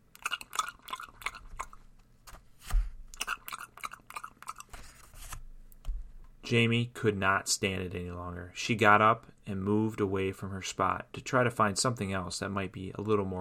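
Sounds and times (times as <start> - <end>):
loud wet open-mouthed gum chewing by a girl in a library: 0.0 - 2.0, 3.1 - 4.9
girl's pages being turned loudly in a library: 4.7 - 5.4
speech: 6.5 - 13.4.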